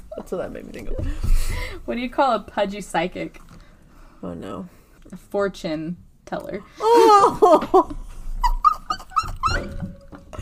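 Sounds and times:
speech: 0:00.3 - 0:03.5, 0:04.2 - 0:08.0
dogs whimpering: 0:08.4 - 0:10.0.

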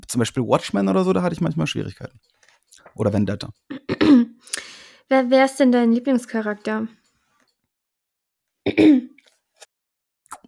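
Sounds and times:
speech: 0:00.1 - 0:02.3, 0:02.9 - 0:03.8, 0:05.1 - 0:07.0, 0:08.6 - 0:09.1
person coughing: 0:03.7 - 0:04.4, 0:08.7 - 0:09.2.

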